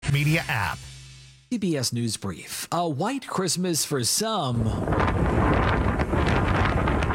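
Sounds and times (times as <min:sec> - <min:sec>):
speech: 0:00.2 - 0:00.9, 0:01.5 - 0:06.6
winter storm wind in South Dakota and Nebraska: 0:04.5 - 0:07.1.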